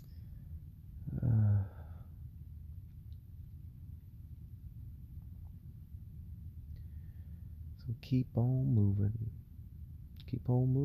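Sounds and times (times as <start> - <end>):
person yawning: 1.1 - 1.9
speech: 7.9 - 9.4, 10.3 - 10.8.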